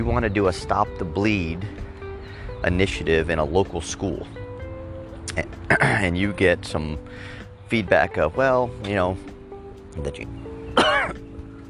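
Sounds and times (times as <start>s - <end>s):
speech: 0.0s - 1.9s, 2.6s - 4.4s, 5.3s - 9.3s, 10.0s - 10.9s
person coughing: 5.7s - 6.0s, 10.8s - 11.2s
throat clearing: 5.7s - 6.0s, 10.8s - 11.2s.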